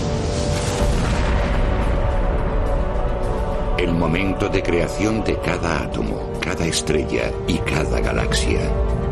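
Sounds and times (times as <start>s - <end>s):
explosion boom sound effect with deep rumble: 0.1s - 3.8s
speech: 3.8s - 9.0s.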